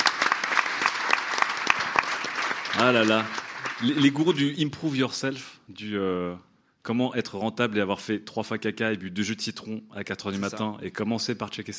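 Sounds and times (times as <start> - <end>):
audience applauding: 0.0 - 4.6
speech: 2.8 - 11.7.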